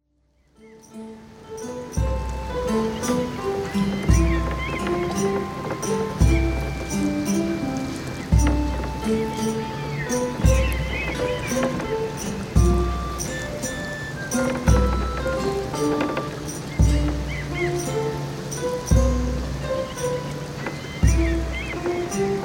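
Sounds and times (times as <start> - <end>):
ambient music day theme: 0.6 - 22.4.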